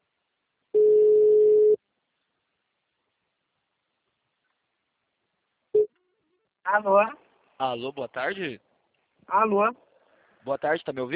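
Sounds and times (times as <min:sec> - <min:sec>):
telephone ringback tone: 0:00.8 - 0:01.8
speech: 0:06.7 - 0:08.7, 0:09.3 - 0:09.8, 0:10.4 - 0:11.1.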